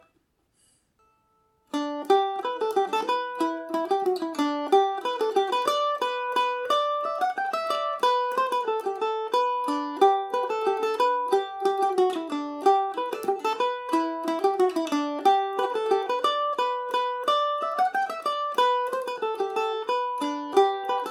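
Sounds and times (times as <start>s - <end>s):
mandolin tune in G major: 0.0s - 21.0s.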